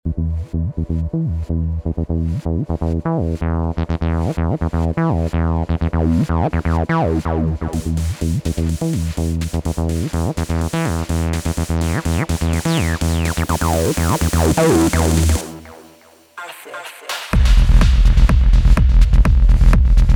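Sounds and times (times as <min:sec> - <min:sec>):
acid bass synth: 0:00.0 - 0:16.3, 0:17.4 - 0:20.1.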